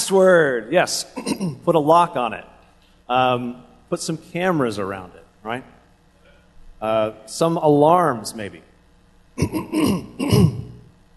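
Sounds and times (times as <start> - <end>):
speech: 0.1 - 2.5, 3.1 - 5.8, 6.8 - 8.7, 9.4 - 10.5
person coughing into a microphone: 1.2 - 1.6, 9.4 - 10.8
person clearing throat into a microphone: 1.2 - 1.7, 9.4 - 10.9.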